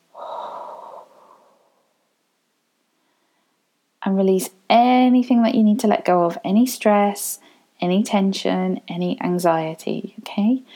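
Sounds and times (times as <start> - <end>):
deep breath in through the nose during a guided relaxation exercise: 0.1 - 2.0
soft trailing exhale: 0.1 - 2.0
speech: 4.0 - 10.7.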